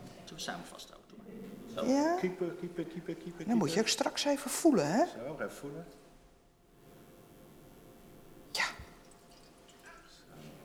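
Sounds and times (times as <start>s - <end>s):
speech: 0.4s - 6.0s
warm water pouring into an empty dry container: 9.0s - 10.2s.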